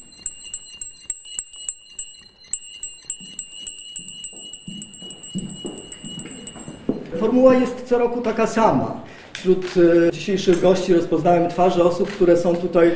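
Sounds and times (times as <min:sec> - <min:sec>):
small brass hand bell ringing: 0:00.0 - 0:07.1
soft handling noise of a hand bell: 0:02.4 - 0:07.2
speech: 0:07.2 - 0:12.9.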